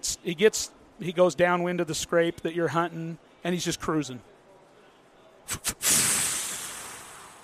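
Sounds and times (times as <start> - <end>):
speech: 0.0 - 4.3, 5.5 - 5.8
human voice imitating a whitetail buck snort-wheeze call: 5.5 - 7.4.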